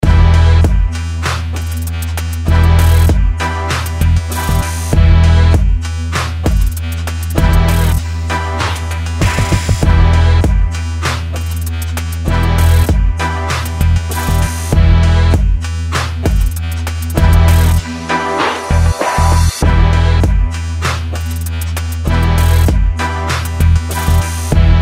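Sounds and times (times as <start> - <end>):
street beat: 0.0 - 24.8.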